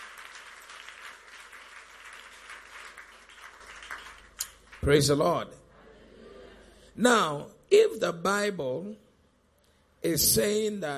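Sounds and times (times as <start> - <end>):
crowd clapping to bless the Lord: 0.0 - 5.2
speech: 4.8 - 5.6, 7.0 - 9.0, 10.0 - 10.9.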